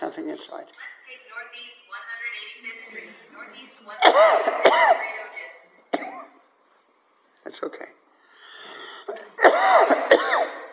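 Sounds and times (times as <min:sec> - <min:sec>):
speech: 0:00.1 - 0:05.4, 0:07.4 - 0:08.0, 0:09.4 - 0:10.6
person coughing: 0:04.0 - 0:05.2, 0:05.9 - 0:06.4, 0:09.1 - 0:10.7.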